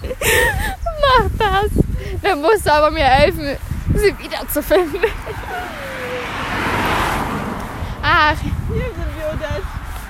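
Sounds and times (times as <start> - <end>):
steady roadside traffic rumble on a main street: 0.0 - 10.0
speech: 1.6 - 5.9, 8.1 - 9.7
car driving past on a main street: 5.3 - 8.1.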